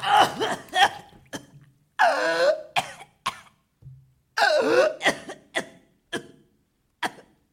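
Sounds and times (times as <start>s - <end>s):
harsh rasping coughing: 0.2s - 1.6s, 2.7s - 3.6s, 4.4s - 7.4s.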